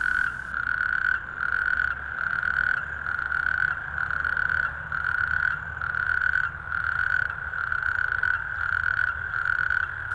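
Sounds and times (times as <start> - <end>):
low hum: 0.0 - 0.6, 9.9 - 10.1
natterjack toad calling with rattling trill: 0.0 - 10.1.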